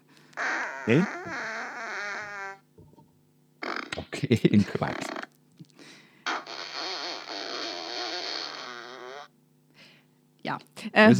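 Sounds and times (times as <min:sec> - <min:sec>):
fart sound effect from a children's book: 0:00.4 - 0:02.6, 0:03.6 - 0:04.2, 0:06.3 - 0:09.3
speech: 0:00.8 - 0:01.4, 0:04.2 - 0:05.2, 0:10.5 - 0:11.1
laughter: 0:04.1 - 0:05.1.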